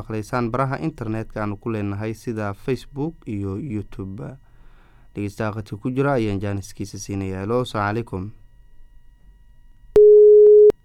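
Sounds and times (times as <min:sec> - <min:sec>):
speech: 0:00.0 - 0:04.4, 0:05.2 - 0:08.4
phone line busy tone after a dropped call: 0:10.0 - 0:10.8.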